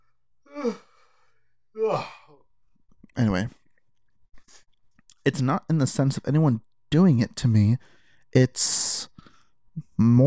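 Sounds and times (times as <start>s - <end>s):
person yawning: 0.5s - 1.0s, 1.8s - 2.4s
speech: 0.6s - 0.8s, 3.2s - 3.6s, 5.2s - 9.1s, 10.0s - 10.2s.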